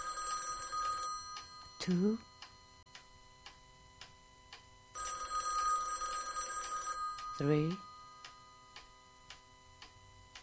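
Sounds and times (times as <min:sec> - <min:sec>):
old-style telephone bell ringing: 0:00.0 - 0:02.8, 0:05.0 - 0:09.2
speech: 0:01.8 - 0:02.3, 0:07.4 - 0:07.9.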